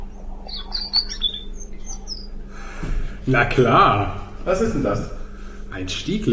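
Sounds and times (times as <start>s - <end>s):
European robin singing: 0.0s - 2.5s
steady low hum: 0.0s - 6.3s
speech: 3.2s - 5.2s, 5.8s - 6.3s.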